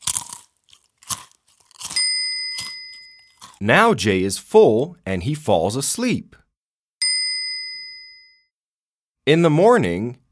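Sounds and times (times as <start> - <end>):
person munching cookies with crisp crunching bites: 0.0 - 2.0, 2.6 - 3.6
bright ringing chime: 2.0 - 3.4, 7.0 - 8.5
speech: 3.6 - 6.4, 9.3 - 10.2.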